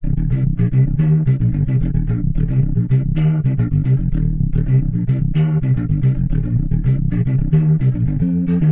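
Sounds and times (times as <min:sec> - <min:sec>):
warped bass loop: 0:00.0 - 0:08.7.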